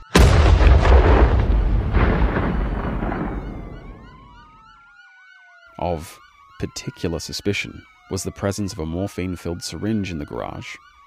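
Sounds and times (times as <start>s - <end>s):
loud explosion of fulminate of mercury beneath the floorboards of a garage laboratory: 0.0s - 4.5s
debris rumbling and crackling as it settles: 0.0s - 4.6s
speech: 5.8s - 10.9s.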